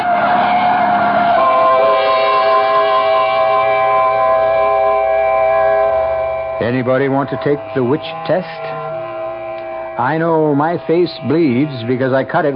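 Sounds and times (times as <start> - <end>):
truck screech: 0.0 - 12.2
truck roaring in a street: 0.0 - 12.5
speech: 6.8 - 8.8, 10.0 - 12.5.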